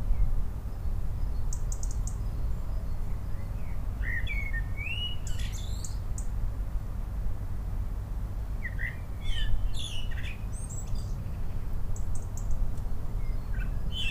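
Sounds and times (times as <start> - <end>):
continuous low noise: 0.0 - 14.0
common blackbird singing fluty phrases: 1.2 - 6.3, 8.6 - 12.5, 13.2 - 14.0.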